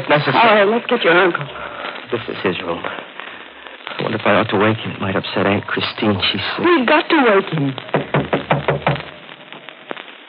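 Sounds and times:
speech: 0.1s - 3.1s, 4.0s - 9.0s
firm knocks on a wooden door: 7.9s - 9.0s.

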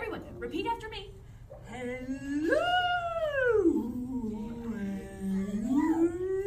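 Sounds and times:
speech: 0.4s - 2.7s
human voice imitating a whale call: 1.7s - 6.4s.

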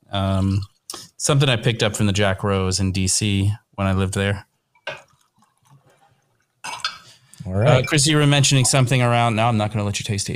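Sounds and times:
speech: 0.1s - 5.0s, 7.6s - 10.3s
whisky pouring into a glass: 4.8s - 7.1s.

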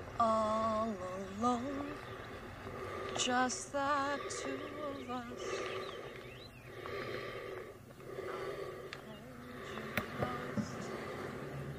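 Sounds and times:
speech: 0.2s - 1.9s, 3.2s - 6.0s
man breathing heavily inside a mask: 2.5s - 11.7s.

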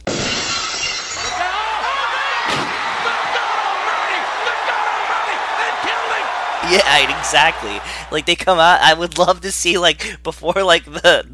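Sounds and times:
tinkling glass fragments: 0.0s - 1.6s
glass shattering sound effect: 0.0s - 1.8s
crowd noise roar: 1.3s - 8.3s
speech: 6.7s - 11.3s.

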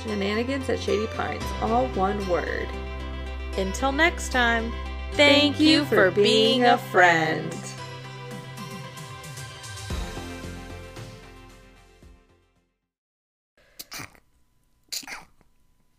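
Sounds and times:
speech: 0.0s - 3.0s, 3.6s - 7.8s
music: 0.0s - 12.8s
sharp sneezes: 13.8s - 14.2s.

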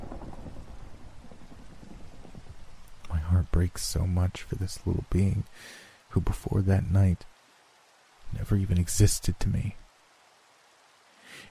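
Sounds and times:
low rumble: 0.0s - 4.0s
steady dense rainfall hissing and pattering: 0.0s - 11.4s
speech: 3.6s - 7.3s, 8.3s - 9.8s.

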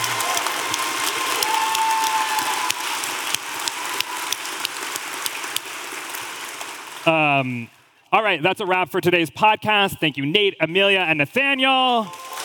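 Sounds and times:
audience applause for a winner: 0.0s - 7.7s, 11.7s - 12.4s
speech: 7.1s - 12.2s.

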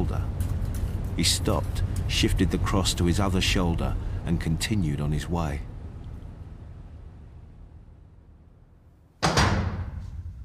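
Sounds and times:
low rumbling room tone: 0.0s - 10.4s
speech: 1.2s - 5.7s
heavy cell door slamming shut and locking: 9.2s - 10.4s.

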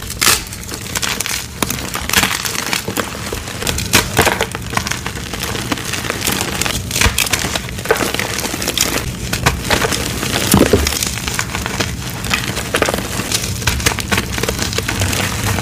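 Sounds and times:
dyed chalk crunching and crumbling: 0.0s - 15.6s.

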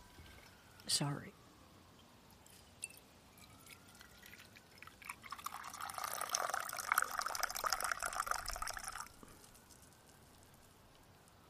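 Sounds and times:
speech: 0.9s - 1.4s
water running and splashing into a cup: 2.8s - 9.9s.

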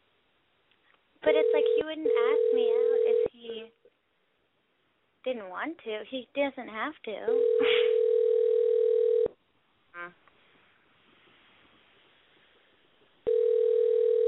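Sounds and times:
speech: 1.2s - 4.0s, 5.2s - 7.9s, 10.0s - 10.2s
telephone ringback tone of an unanswered call: 1.3s - 3.3s, 7.3s - 9.3s, 13.3s - 14.2s.

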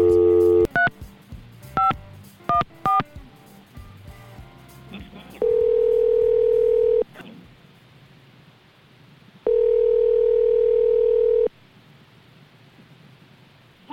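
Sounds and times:
person answering phone: 0.0s - 0.7s, 5.4s - 7.1s, 9.5s - 11.5s
telephone ringing tone: 0.0s - 0.7s, 5.4s - 7.1s, 9.5s - 11.5s.

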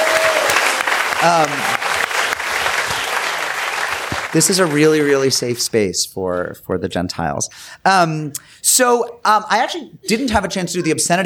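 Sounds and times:
audience at a live show applauding: 0.0s - 5.6s
speech: 1.2s - 1.8s, 4.3s - 11.2s.

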